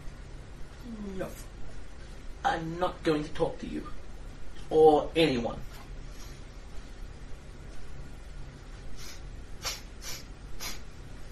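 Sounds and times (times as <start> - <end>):
low hiss: 0.0 - 11.3
speech: 1.1 - 1.5, 2.4 - 4.0, 4.7 - 5.8
person imitating a small fairy dragon sniffing: 9.0 - 10.9.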